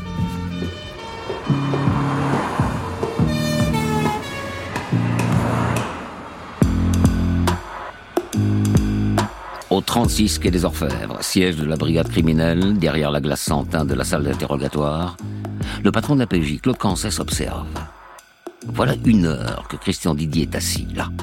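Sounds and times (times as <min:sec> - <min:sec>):
short horn toots: 0:00.0 - 0:06.9
police siren in alternating two-tone blasts: 0:00.0 - 0:09.7
busy traffic noise: 0:00.0 - 0:16.4
speech: 0:09.9 - 0:18.0, 0:18.6 - 0:21.2.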